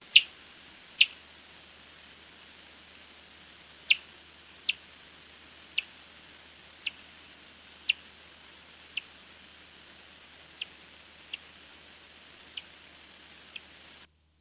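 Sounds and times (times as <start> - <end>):
Fringed Myotis bats calling: 0.0 - 0.4, 1.0 - 1.2, 3.8 - 4.9, 5.7 - 6.0, 6.8 - 7.0, 7.8 - 8.1, 8.9 - 9.1, 10.5 - 11.6, 12.4 - 14.0.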